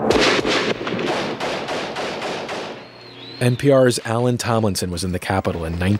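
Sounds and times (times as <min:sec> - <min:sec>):
rapid volley of gunfire during civil war in El Salvador: 0:00.0 - 0:02.9
speech: 0:03.4 - 0:05.9.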